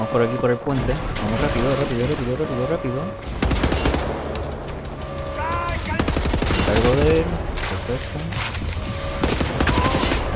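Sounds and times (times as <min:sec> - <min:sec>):
speech: 0:00.0 - 0:03.6, 0:06.7 - 0:08.7
rapid automatic gunfire from a video game: 0:03.2 - 0:07.3, 0:08.8 - 0:10.3.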